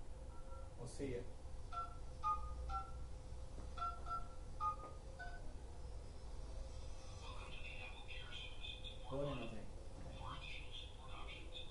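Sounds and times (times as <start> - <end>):
low hum: 0.0 - 11.6
speech: 0.8 - 1.4
telephone keypad tones dialing through a customer service phone menu: 1.7 - 3.0, 3.8 - 5.5
recorded voice: 7.2 - 11.6.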